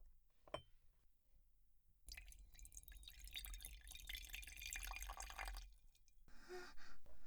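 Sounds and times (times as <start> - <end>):
hot water poured into a Japanese kyusu teapot: 2.1 - 5.7
liquid splash: 2.1 - 5.7
faint drips: 2.1 - 5.8.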